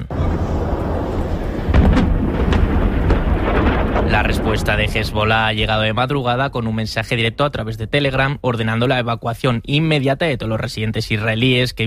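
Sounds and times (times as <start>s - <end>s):
sharp explosion bursts: 0.0s - 7.2s
deep continuous rumble of explosions: 0.0s - 9.0s
speech: 4.2s - 11.8s.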